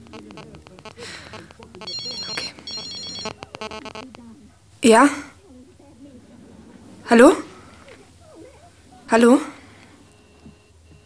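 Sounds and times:
mobile phone ringtone in a repeating electronic melody: 0.0s - 4.2s
faint voice murmuring: 0.0s - 10.2s
speech: 3.6s - 5.3s, 7.1s - 7.5s, 9.1s - 9.5s.

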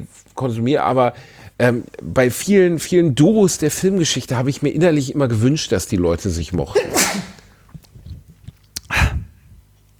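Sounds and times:
speech: 0.0s - 7.2s
person sneezing away from the microphone with headset removed: 6.7s - 7.5s.

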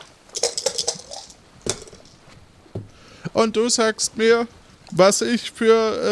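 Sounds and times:
dice rattling and clattering across a hard surface: 0.3s - 2.2s
speech: 2.8s - 6.1s.

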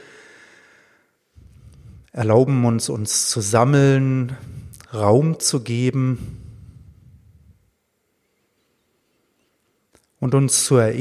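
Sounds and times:
deep audible breath in and out: 0.0s - 2.2s, 4.3s - 4.9s, 6.2s - 7.7s
speech: 2.1s - 6.4s, 10.2s - 10.9s.

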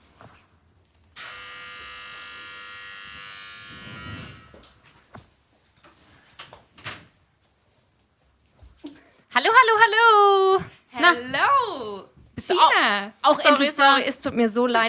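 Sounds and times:
electric buzz from a front door opener: 1.2s - 4.8s
speech: 9.4s - 14.8s.

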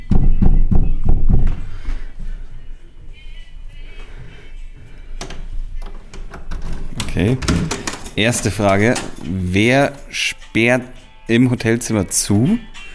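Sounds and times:
loud heavy knocks with an elbow on a hotel room door: 0.0s - 1.6s
speech: 7.2s - 12.7s.

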